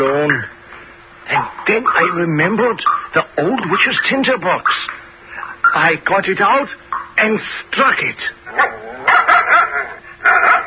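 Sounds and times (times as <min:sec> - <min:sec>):
speech: 0:01.7 - 0:05.0, 0:05.8 - 0:09.0
huge dog barking and yelping: 0:08.5 - 0:10.6.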